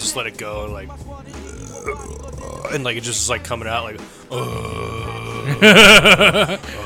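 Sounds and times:
speech: 0.1s - 6.8s
voice imitating a loud drawn-out burp: 1.3s - 2.9s, 4.3s - 5.9s
laughter: 5.3s - 6.8s.

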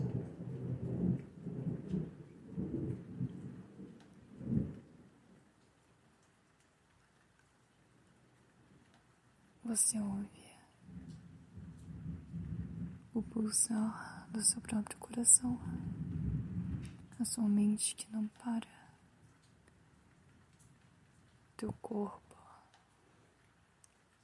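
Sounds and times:
sharp crack of thunder: 0.0s - 3.7s, 4.4s - 4.8s, 10.9s - 17.2s
deep rumbling thunder: 0.0s - 5.1s, 10.8s - 18.0s
steady rain at night: 0.0s - 24.2s
speech: 9.7s - 10.4s, 13.2s - 16.1s, 17.2s - 18.8s, 21.6s - 22.2s.

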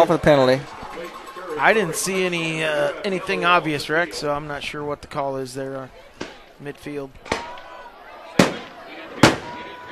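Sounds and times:
speech: 0.0s - 0.8s, 1.6s - 7.4s
fireworks bangs with crackling decay: 8.3s - 9.9s.

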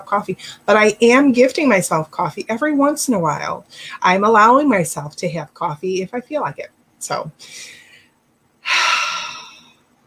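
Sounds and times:
speech: 0.0s - 7.8s
deep breath: 7.4s - 9.9s.

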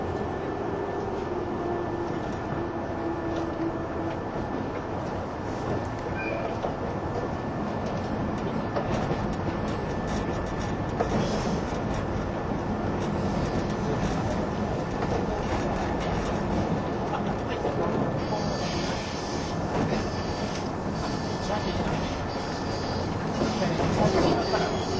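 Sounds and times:
185-series train running rumble between Izukyu-Shimoda and Atami: 0.0s - 24.9s.

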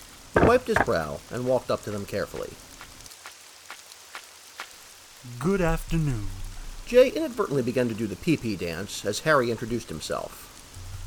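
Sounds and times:
soft steady rain: 0.0s - 11.0s
heavier raindrops tapping a surface: 0.4s - 1.0s
speech: 0.4s - 2.7s, 5.2s - 10.5s.

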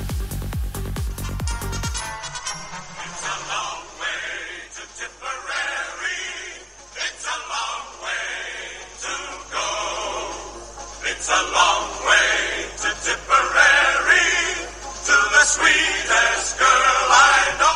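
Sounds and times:
thin tinny old recording of a marching song: 0.0s - 17.7s.

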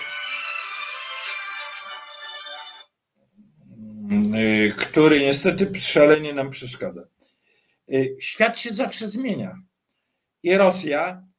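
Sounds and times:
phone ringtone electronic melody: 0.0s - 3.0s
speech: 4.1s - 7.2s, 7.9s - 9.7s, 10.4s - 11.3s.

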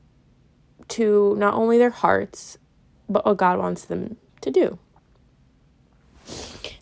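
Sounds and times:
speech: 0.9s - 4.8s
nose sniffling: 6.2s - 6.8s.

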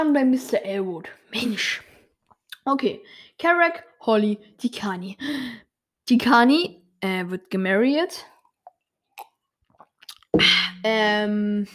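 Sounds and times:
speech: 0.0s - 1.9s, 2.6s - 8.3s, 10.3s - 11.7s
small wet mouth clicks while drinking water: 8.4s - 10.8s
swallowing gulps of water: 8.4s - 10.8s.

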